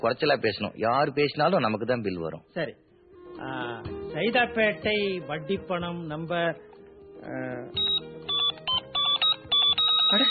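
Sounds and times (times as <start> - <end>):
speech: 0.0 - 7.9
telephone ringing with an incoming call: 7.8 - 10.2.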